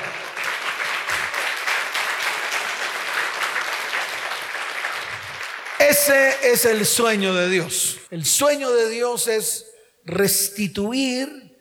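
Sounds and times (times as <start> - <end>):
congregation applauding: 0.0 - 7.2
speech: 5.9 - 11.5.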